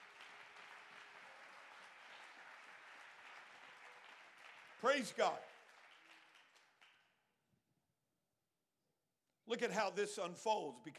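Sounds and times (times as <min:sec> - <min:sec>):
audience applauding: 0:00.0 - 0:07.1
speech: 0:04.8 - 0:05.5, 0:09.5 - 0:10.9.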